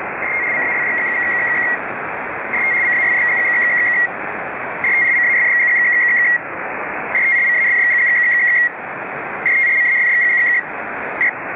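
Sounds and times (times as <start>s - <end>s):
Pactor 3 radio modem link establishment tones: 0.2s - 1.8s, 2.5s - 4.2s, 4.8s - 6.4s, 7.1s - 8.8s, 9.4s - 11.4s.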